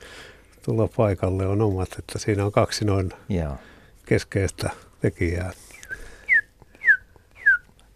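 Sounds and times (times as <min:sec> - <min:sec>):
speech: 0:00.7 - 0:05.7
osprey whistling call: 0:05.7 - 0:07.6.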